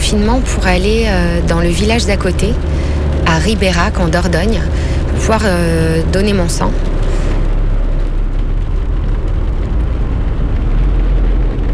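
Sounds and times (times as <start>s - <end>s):
rain drumming on a car roof: 0.0s - 11.7s
speech: 0.1s - 7.0s.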